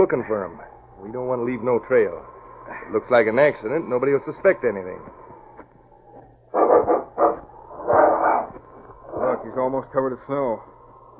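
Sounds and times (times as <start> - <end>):
speech: 0.0 - 5.3, 9.4 - 10.7
faint low hum: 0.0 - 11.1
dog barking: 6.5 - 9.5.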